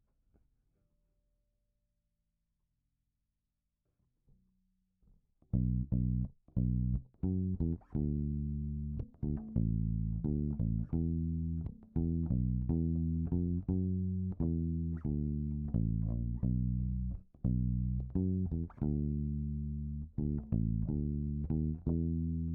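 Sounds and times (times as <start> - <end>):
bass effect: 5.6 - 22.5.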